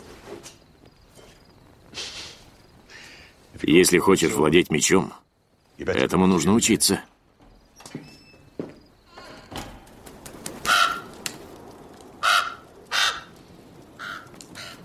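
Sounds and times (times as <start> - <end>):
speech: 3.6 - 7.2
crow cawing: 10.6 - 11.2, 12.2 - 13.4, 14.0 - 14.8.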